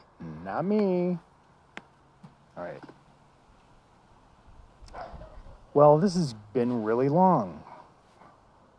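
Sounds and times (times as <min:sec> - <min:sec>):
low quiet noise: 0:00.0 - 0:08.7
speech: 0:00.5 - 0:01.3, 0:02.6 - 0:03.0, 0:05.8 - 0:07.7
dog barking: 0:04.9 - 0:05.6, 0:07.6 - 0:08.0.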